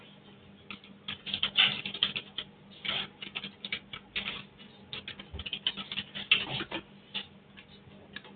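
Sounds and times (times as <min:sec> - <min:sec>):
typing on a computer keyboard picked up through a call microphone: 0:00.7 - 0:07.3.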